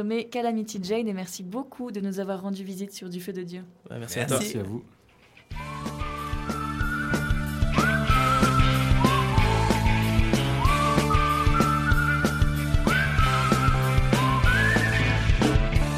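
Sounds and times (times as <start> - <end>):
speech: 0.0 - 5.8
whistled melody with gliding notes: 5.5 - 15.9.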